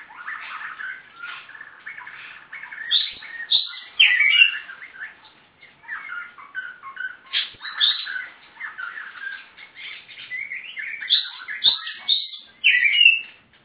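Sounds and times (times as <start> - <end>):
Oriental Magpie-robin song: 0.0 - 13.6.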